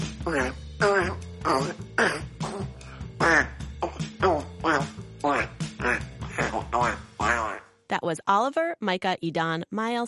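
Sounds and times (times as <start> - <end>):
speech: 0.2 - 2.2, 8.2 - 10.0
child imitating a Parasaurolophus fart: 0.2 - 7.7.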